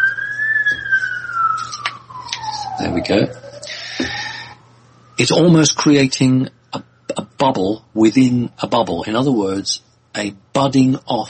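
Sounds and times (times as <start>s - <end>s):
ambulance siren passing by: 0.0s - 8.6s
speech: 2.8s - 3.4s, 5.2s - 11.2s.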